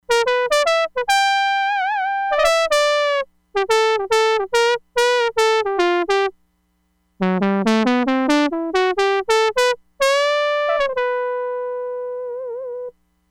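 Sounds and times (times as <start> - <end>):
trumpet on a Crumar Bit 99: 0.1 - 6.3, 7.2 - 12.9.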